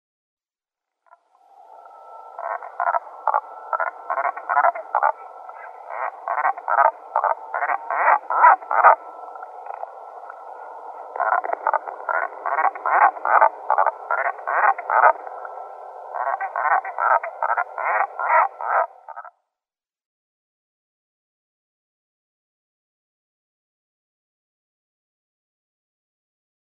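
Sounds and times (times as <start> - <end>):
wandering albatross: 2.3 - 19.3.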